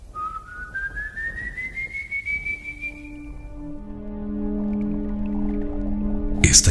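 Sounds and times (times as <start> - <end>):
eerie whistle sliding upward: 0.2 - 3.6
low sustained droning tones: 3.0 - 6.6.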